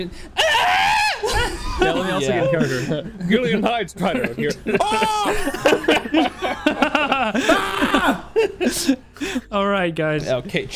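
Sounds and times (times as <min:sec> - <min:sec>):
speech: 0:00.0 - 0:00.8, 0:01.8 - 0:10.7
person screaming: 0:00.4 - 0:02.0, 0:04.8 - 0:05.6, 0:07.4 - 0:08.4
laughter: 0:01.1 - 0:09.5.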